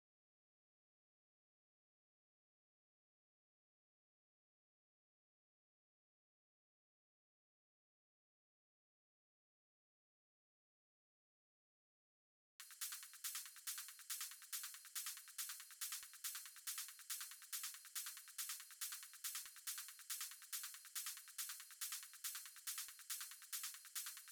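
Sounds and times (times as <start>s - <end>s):
hi-hat loop: 12.6s - 24.2s.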